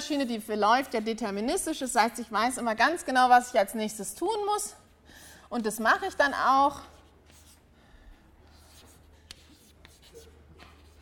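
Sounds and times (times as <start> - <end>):
speech: 0.1 - 4.8, 5.5 - 7.0
handwriting with a pen: 7.0 - 7.6, 8.5 - 11.0.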